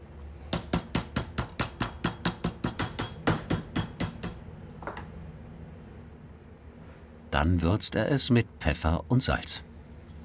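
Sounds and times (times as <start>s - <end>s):
meat mallet pounding pork loin into thin slices: 0.5s - 4.4s
speech: 7.4s - 9.7s.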